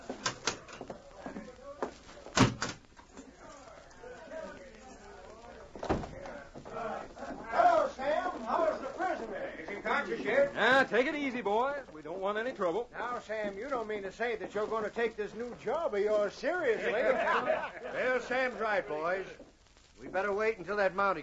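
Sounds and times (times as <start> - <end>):
heavy cell door clanking shut: 2.3 - 2.8
laughter: 3.2 - 10.6, 16.4 - 19.4
speech: 10.9 - 19.4, 20.1 - 21.2.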